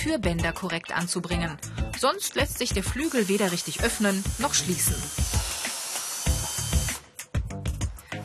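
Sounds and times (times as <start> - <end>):
speech: 0.0 - 5.5
power tool driving fasteners into steel reinforcement in plastic frame: 2.8 - 7.2.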